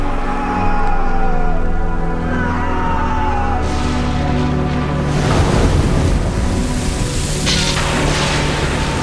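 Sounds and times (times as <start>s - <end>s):
low musical drone: 0.0s - 9.0s
loud churning stormy sea waves crashing: 2.8s - 9.0s
gusty wind roaring over the sea: 3.8s - 9.0s.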